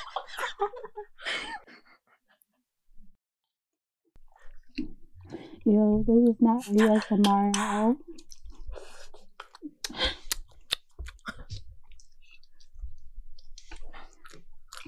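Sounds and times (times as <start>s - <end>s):
laughter: 0.0s - 2.2s
speech: 0.2s - 1.9s, 5.6s - 8.3s
open-mouthed chewing with wet smacks: 4.2s - 5.6s, 7.5s - 14.8s.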